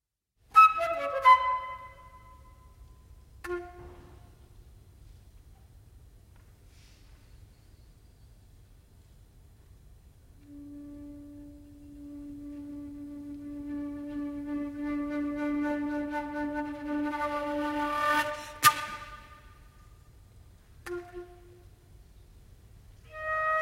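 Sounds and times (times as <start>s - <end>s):
solo transverse flute: 0.5s - 4.7s, 10.4s - 20.1s, 20.8s - 22.0s, 23.0s - 23.6s.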